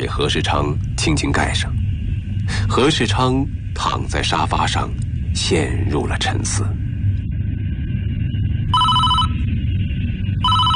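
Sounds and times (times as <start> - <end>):
speech: 0.0 - 1.8, 2.5 - 6.8
steady low engine-like rumble on an airplane: 0.0 - 10.7
telephone on an airplane ringing in electronic bursts: 8.7 - 9.4, 10.4 - 10.7.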